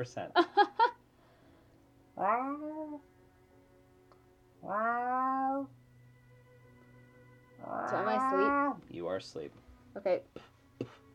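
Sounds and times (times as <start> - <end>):
speech: 0.0 - 0.6, 2.2 - 3.1, 4.6 - 5.8, 7.6 - 11.0
cat meowing: 2.2 - 3.0, 4.6 - 5.7, 7.7 - 8.8.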